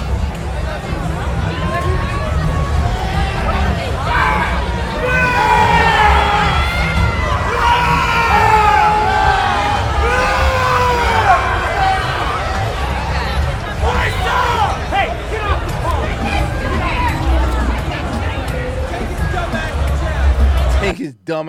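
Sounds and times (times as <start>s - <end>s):
noisy crowd: 0.0s - 21.4s
high-pitched screaming over a noisy crowd: 1.5s - 18.3s.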